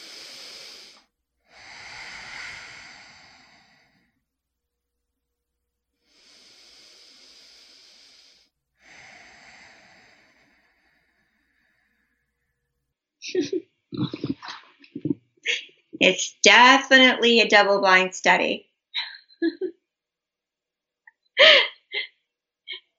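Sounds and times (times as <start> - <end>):
person breathing during a medical scan: 0.0 - 4.2, 6.0 - 12.4, 21.4 - 22.0
speech: 13.3 - 14.2, 16.0 - 18.7.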